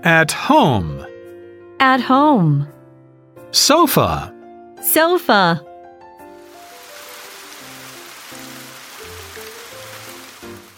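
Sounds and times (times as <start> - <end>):
speech: 0.0 - 1.1, 1.8 - 2.8, 3.5 - 5.7
steady rain falling: 6.4 - 10.7.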